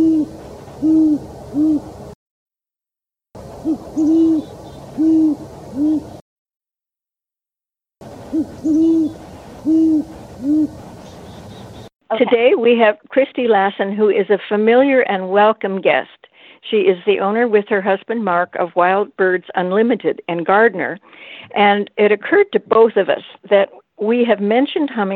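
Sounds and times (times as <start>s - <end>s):
great horned owl hooting deep soft hoots: 0.0s - 2.0s, 3.6s - 6.2s, 8.1s - 11.9s
speech: 12.2s - 25.1s.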